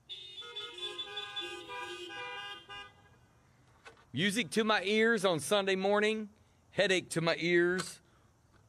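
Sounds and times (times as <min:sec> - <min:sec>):
car horns honking at a church as a greeting: 0:00.0 - 0:03.2
speech: 0:04.1 - 0:08.0.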